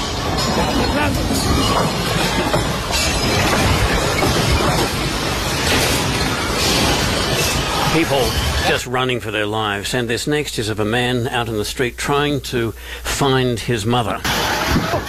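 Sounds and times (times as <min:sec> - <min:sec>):
sharp bangs and clatters: 0:00.0 - 0:08.8, 0:14.2 - 0:15.0
steel and concrete crashing down from a ceiling at the Caracas airport: 0:00.0 - 0:08.8, 0:14.2 - 0:15.0
speech: 0:00.6 - 0:06.2, 0:06.8 - 0:14.5.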